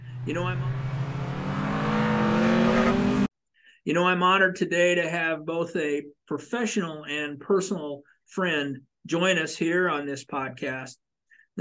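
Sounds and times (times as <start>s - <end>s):
race car engines revving: 0.0s - 3.3s
speech: 0.2s - 0.9s, 3.8s - 11.0s.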